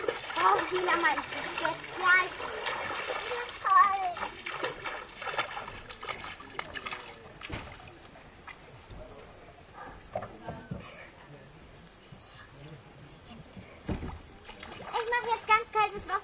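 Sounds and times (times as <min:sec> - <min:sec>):
very cold water sloshing and splashing: 0:00.0 - 0:09.4, 0:13.9 - 0:16.2
voices murmuring: 0:00.0 - 0:16.2
speech: 0:00.7 - 0:04.4.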